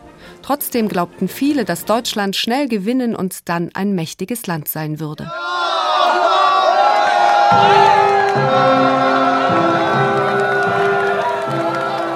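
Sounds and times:
speech: 0:00.5 - 0:06.2, 0:07.5 - 0:09.7
large crowd in Germany cheering and shouting as soldiers go to the train station: 0:05.3 - 0:12.1.

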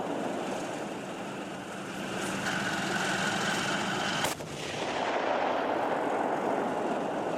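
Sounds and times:
heavy battle tank engine roar: 0:00.0 - 0:07.3
battle tank firing a live cannon round: 0:04.2 - 0:07.3.

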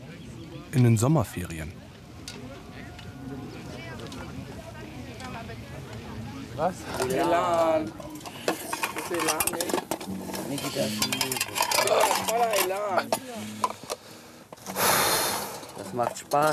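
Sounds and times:
speech: 0:00.7 - 0:01.8, 0:06.6 - 0:08.0, 0:09.1 - 0:13.8, 0:15.9 - 0:16.5
dishes and cutlery clinking and scraping while being washed: 0:06.9 - 0:14.0, 0:15.7 - 0:16.5.

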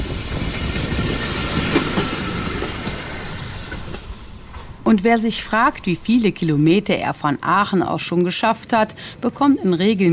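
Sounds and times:
red pedal-powered rail trolley wheels rumbling on old railway track rails: 0:00.0 - 0:07.2
speech: 0:04.9 - 0:10.1.

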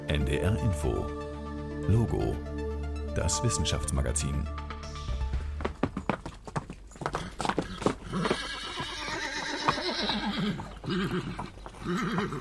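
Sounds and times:
speech: 0:00.1 - 0:01.2, 0:01.9 - 0:02.5, 0:03.1 - 0:04.6, 0:08.1 - 0:08.5, 0:10.4 - 0:12.3
hooves clip-clopping over a hard surface: 0:05.3 - 0:12.3
horse whinnying: 0:07.1 - 0:12.3.

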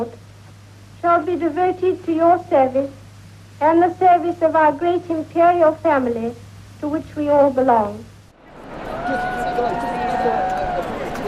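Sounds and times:
speech: 0:00.0 - 0:00.2, 0:01.1 - 0:03.0, 0:03.6 - 0:08.1
large crowd at Royal Ascot cheering and shouting: 0:08.6 - 0:11.2.

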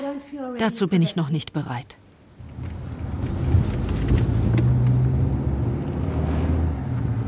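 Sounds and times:
speech: 0:00.2 - 0:02.0
car driving along a road: 0:02.4 - 0:07.2.

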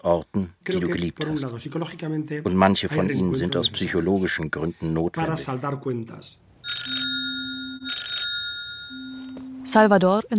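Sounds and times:
speech: 0:00.0 - 0:07.0, 0:09.7 - 0:10.3
phone ringing in an electronic trill: 0:06.6 - 0:10.0.

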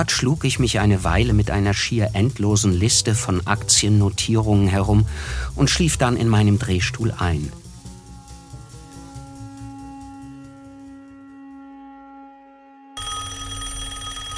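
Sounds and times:
speech: 0:00.0 - 0:07.6
telephone bell ringing: 0:13.0 - 0:14.3.

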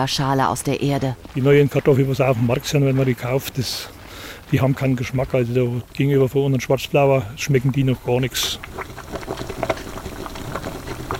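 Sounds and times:
speech: 0:00.0 - 0:09.0
water boiling with potatoes on a large wood-fired stove in a kitchen: 0:00.0 - 0:11.1.

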